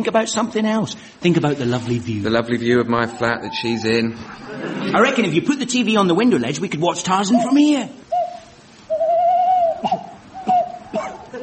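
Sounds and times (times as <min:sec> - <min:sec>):
speech: 0:00.0 - 0:08.1
owl hooting: 0:02.8 - 0:04.4, 0:07.2 - 0:11.3
laughter: 0:03.2 - 0:05.3, 0:11.2 - 0:11.4
owl giving raspy coughs: 0:09.8 - 0:11.3.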